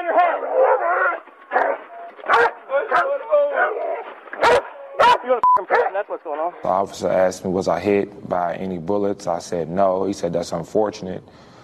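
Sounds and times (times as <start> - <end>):
police dog barking and growling: 0.0 - 6.0
raised voices: 0.0 - 6.6
police dog whining and yelping: 0.1 - 2.6
speech: 5.6 - 11.6.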